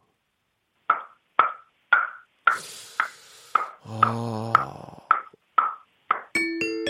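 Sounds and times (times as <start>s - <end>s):
voice imitating a wooden mallet knocking with the mouth: 0.9s - 6.4s
speech: 3.9s - 4.4s.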